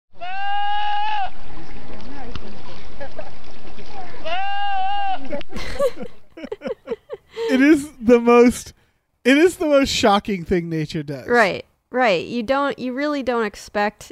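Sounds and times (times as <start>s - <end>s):
goat screaming: 0.2s - 1.4s, 4.2s - 5.3s
laughter: 5.2s - 8.6s
speech: 8.1s - 14.1s.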